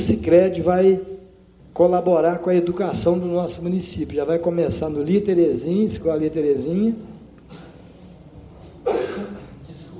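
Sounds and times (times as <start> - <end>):
speech: 0.0 - 1.1, 1.8 - 7.1
person coughing: 7.5 - 7.9, 8.6 - 9.6.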